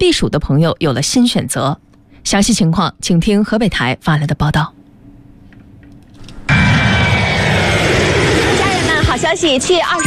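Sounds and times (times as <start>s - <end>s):
speech: 0.0s - 4.8s, 9.2s - 10.0s
passenger jet engine roar: 6.4s - 10.0s.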